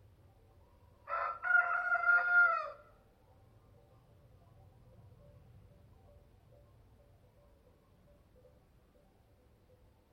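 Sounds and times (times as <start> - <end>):
rooster crowing a hoarse cock-a-doodle-doo: 1.0 - 2.9.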